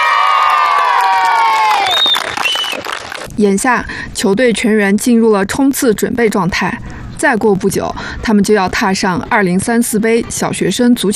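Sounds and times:
children shouting and cheering on a primary school football field in Shache County: 0.0 - 3.1
speech: 3.4 - 11.1.

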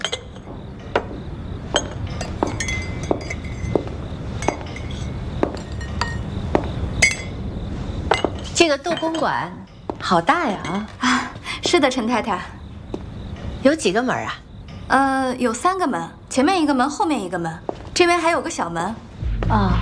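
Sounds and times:
porcelain teacups clinking as tea is poured: 0.0 - 1.1, 1.7 - 7.4, 8.1 - 11.0
speech: 8.6 - 12.6, 13.6 - 19.8.

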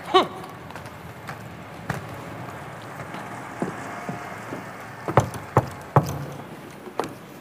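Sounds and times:
knocking on a door: 5.1 - 6.5.

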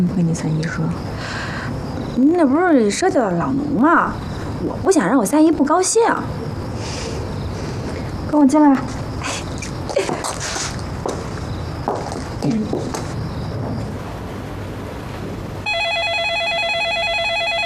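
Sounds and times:
speech: 0.0 - 7.0, 8.3 - 9.0, 12.4 - 13.0
rustling and shuffling: 8.8 - 14.0
phone ringing with a bright electronic warble: 15.6 - 17.6.

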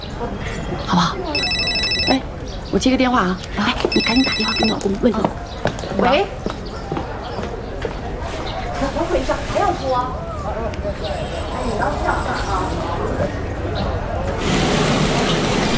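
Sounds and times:
people talking: 0.0 - 14.6
busy noise: 0.0 - 15.7
telephone ringing with bright electronic tones: 1.3 - 2.3, 3.9 - 5.0.

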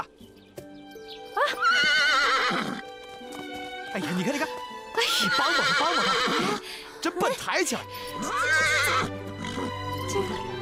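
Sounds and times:
mare neighing while giving birth to a foal: 1.4 - 2.8, 5.1 - 6.6, 8.2 - 9.8
speech: 1.5 - 2.0, 4.0 - 4.6, 5.2 - 9.2.

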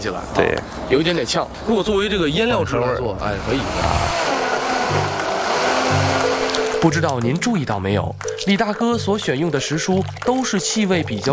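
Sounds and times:
speech: 0.0 - 4.3, 6.8 - 11.3
juicer motor whirring pressing onion, garlic and vegetables into juice: 3.2 - 7.5.

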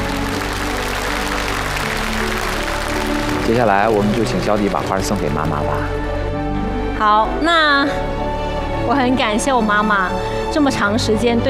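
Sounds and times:
audience applause welcoming someone on stage: 0.0 - 6.0
speech: 3.5 - 6.2, 7.0 - 11.4.

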